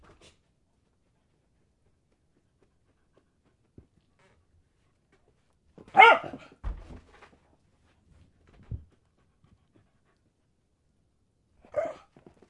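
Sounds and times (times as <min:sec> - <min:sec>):
dog barking while playing fetch: 0:05.9 - 0:06.5, 0:11.7 - 0:12.1.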